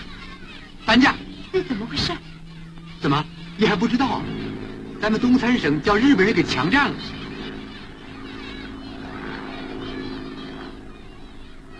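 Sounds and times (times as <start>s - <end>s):
Japanese military propeller airplanes flying away: 0.0s - 11.7s
speech: 0.9s - 2.4s, 3.0s - 4.4s, 5.0s - 7.2s.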